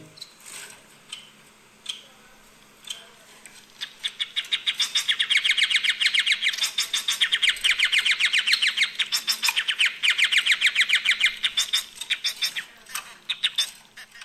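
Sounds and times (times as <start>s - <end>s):
society finches chirping and squawking: 3.8s - 13.7s.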